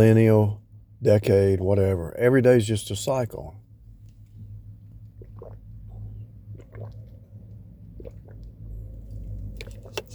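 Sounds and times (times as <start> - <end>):
speech: 0.0 - 3.6
steady low hum: 0.0 - 10.1
person drinking water swallowing: 5.0 - 10.1.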